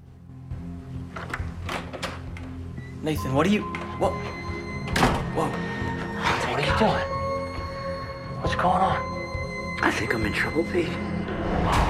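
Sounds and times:
front door being unlatched and swung open: 1.0s - 3.0s, 3.6s - 6.6s
sharp clicks of a door latch: 1.1s - 2.6s
speech: 3.0s - 4.4s, 5.4s - 5.9s, 6.6s - 7.2s, 8.5s - 9.1s, 9.8s - 11.8s.

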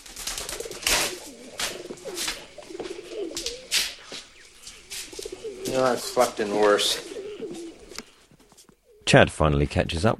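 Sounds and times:
pigeon wings fluttering: 0.0s - 8.0s
pigeons cooing while roosting in a derelict hotel: 0.0s - 9.1s
speech: 5.8s - 7.1s, 9.1s - 10.1s.

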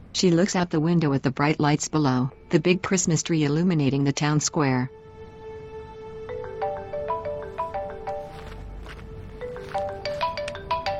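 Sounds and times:
speech: 0.2s - 5.0s
phone ringtone with bright repeating melody of short electronic notes at home: 6.3s - 10.9s.

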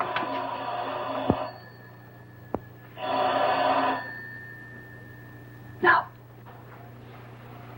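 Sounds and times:
telephone ringing: 0.0s - 5.8s
steady low hum: 0.0s - 7.7s.

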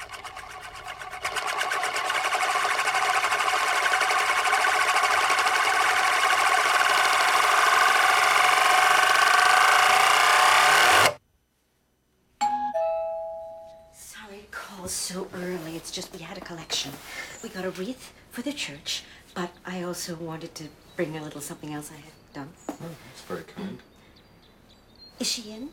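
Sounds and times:
glittering coin-like disc spinning on its edge on a circular mirror: 0.0s - 11.2s
short doorbell-like chime: 12.4s - 14.0s
speech: 16.8s - 23.9s, 25.2s - 25.7s.

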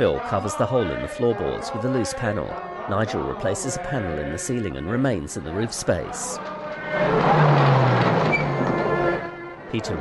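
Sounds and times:
speech: 0.0s - 8.1s, 9.7s - 9.9s
army truck engine and road rumble arriving with troops: 6.4s - 9.9s.

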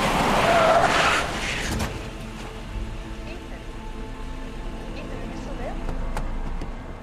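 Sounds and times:
SUV tires skidding under hard braking: 0.0s - 2.6s
low steady SUV engine rumble: 0.0s - 7.0s.

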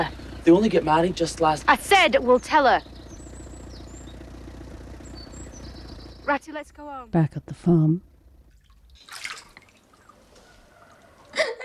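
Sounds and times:
speech: 0.0s - 2.9s, 6.3s - 8.1s
water scooped and poured in a big metal bathtub: 8.5s - 11.4s
laughter: 11.3s - 11.6s.

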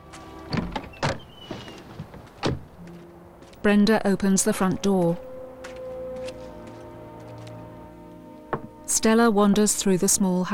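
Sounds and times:
car door clunks from a Jaguar pulled up outside a house: 0.5s - 3.0s
speech: 3.6s - 5.3s, 9.0s - 10.5s.

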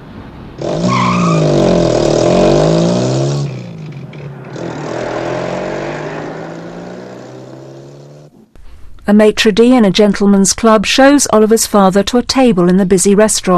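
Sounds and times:
car engine roaring as it drives off into the night: 0.0s - 8.5s
car tire squeal: 0.6s - 8.3s
speech: 9.1s - 13.5s.

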